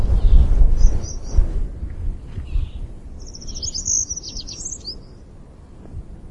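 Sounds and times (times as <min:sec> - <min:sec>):
Helan Mountain accentor faint brief chirp: 0:00.0 - 0:01.5, 0:02.4 - 0:05.2
gusty low rumbling wind: 0:00.0 - 0:06.3.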